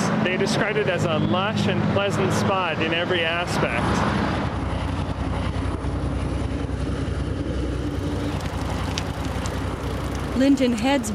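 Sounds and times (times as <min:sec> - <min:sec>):
speech: 0:00.4 - 0:04.3, 0:10.4 - 0:11.1
freight train rumbling past beside a river at evening: 0:02.1 - 0:11.1.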